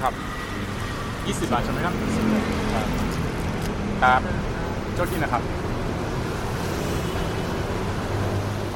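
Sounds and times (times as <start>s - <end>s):
road traffic roar echoing off concrete slabs under elevated train tracks: 0.0s - 8.7s.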